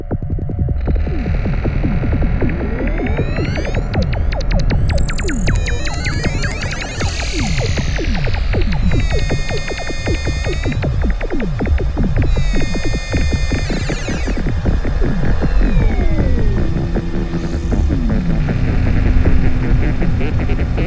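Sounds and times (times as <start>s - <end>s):
SUPER6 synthesizer effects: 0.1s - 20.8s.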